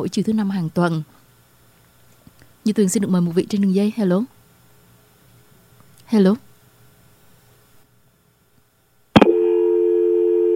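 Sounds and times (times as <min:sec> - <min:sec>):
speech: 0:00.0 - 0:01.2, 0:02.6 - 0:04.4, 0:06.1 - 0:06.5
click on a phone line: 0:09.2 - 0:10.5
steady unbroken telephone line tone: 0:09.2 - 0:10.5.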